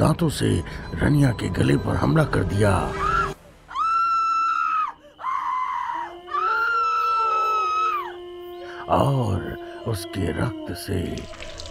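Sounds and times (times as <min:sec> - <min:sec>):
speech: 0:00.0 - 0:03.2, 0:08.9 - 0:11.5
woman screaming in pain: 0:03.1 - 0:08.3.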